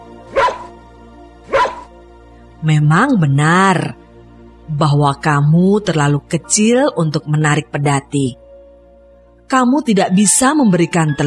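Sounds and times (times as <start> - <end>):
old dog barking: 0.2 - 0.8, 1.5 - 1.9
speech: 2.6 - 4.0, 4.7 - 8.4, 9.5 - 11.2.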